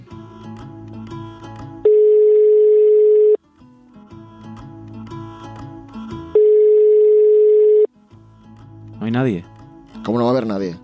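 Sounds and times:
soft music: 0:00.0 - 0:10.8
telephone ringing tone while calling home: 0:01.8 - 0:03.4, 0:06.3 - 0:07.9
speech: 0:09.2 - 0:09.5, 0:10.1 - 0:10.8.

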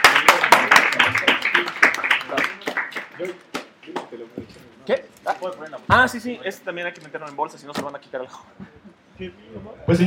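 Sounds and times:
audience applause during a comic giveaway at a talk event: 0:00.0 - 0:04.0
speech: 0:03.2 - 0:03.5, 0:04.1 - 0:08.6, 0:09.2 - 0:10.0.

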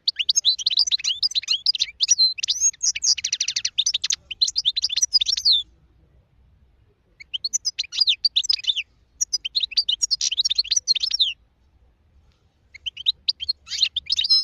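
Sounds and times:
wild European goldfinch twittering and trilling song: 0:00.0 - 0:05.6, 0:07.2 - 0:11.4, 0:12.7 - 0:14.4.

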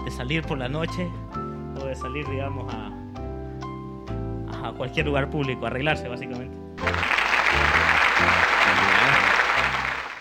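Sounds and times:
speech: 0:00.1 - 0:02.9, 0:04.6 - 0:07.1
applause: 0:06.8 - 0:10.1
low music or voices: 0:07.6 - 0:10.1.

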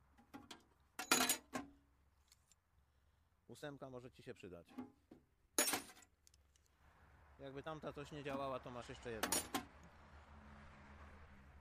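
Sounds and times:
standard wrenches from a car tool set tossed in: 0:00.3 - 0:01.6, 0:09.2 - 0:09.7
speech: 0:03.5 - 0:05.2, 0:07.4 - 0:09.6.

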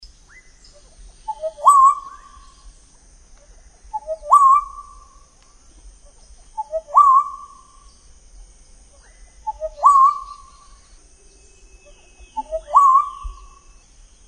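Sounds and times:
steady high insect hum: 0:00.0 - 0:14.2
Black-naped oriole fluting whistled song: 0:01.3 - 0:02.6, 0:03.9 - 0:05.0, 0:06.6 - 0:07.8, 0:09.4 - 0:13.8.

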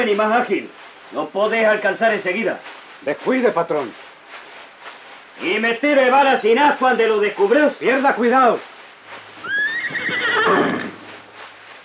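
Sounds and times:
speech: 0:00.0 - 0:04.0, 0:05.4 - 0:08.7
faint hoof clops: 0:00.0 - 0:11.8
suffering horse whinnying: 0:09.4 - 0:11.1.

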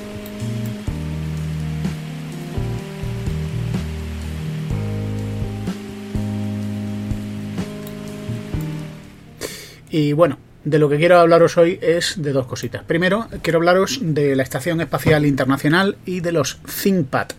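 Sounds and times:
steady rain: 0:00.0 - 0:09.7
soft jazz chords and melody: 0:00.0 - 0:16.7
speech: 0:09.9 - 0:17.3.

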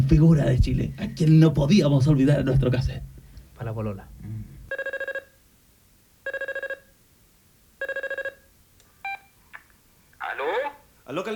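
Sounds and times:
speech: 0:00.1 - 0:04.5, 0:11.1 - 0:11.3
telephone ringing during a call: 0:04.7 - 0:05.4, 0:06.2 - 0:06.9, 0:07.8 - 0:09.3.

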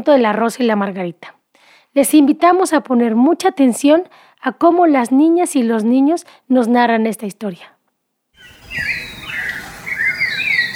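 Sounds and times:
speech: 0:00.0 - 0:07.8, 0:08.4 - 0:09.0
bird singing in the morning: 0:08.4 - 0:10.7.

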